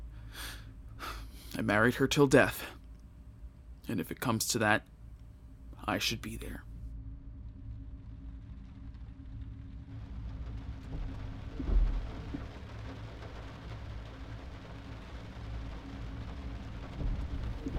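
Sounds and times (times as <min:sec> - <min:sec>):
speech: 0:01.6 - 0:02.8, 0:03.9 - 0:04.9, 0:05.8 - 0:06.7
thunder rumbling: 0:07.3 - 0:17.7
heavy driving rain: 0:08.0 - 0:17.7.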